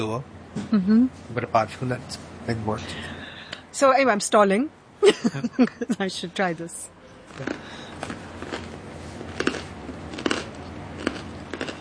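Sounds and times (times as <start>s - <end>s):
speech: 0.0s - 3.2s, 3.8s - 8.0s
crunching crusty bread sandwich with mock chicken: 7.3s - 11.7s
quiet chewing: 7.3s - 11.7s.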